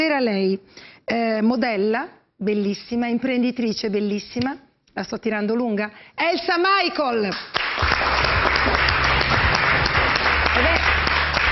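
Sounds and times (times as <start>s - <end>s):
speech: 0.0s - 8.8s
large audience applauding: 7.6s - 11.5s.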